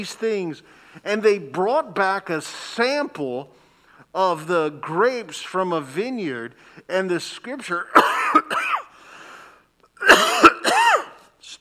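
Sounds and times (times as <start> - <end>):
speech: 0.0 - 8.8
man coughing with a wheezy throaty edge: 7.9 - 8.9, 10.0 - 11.3.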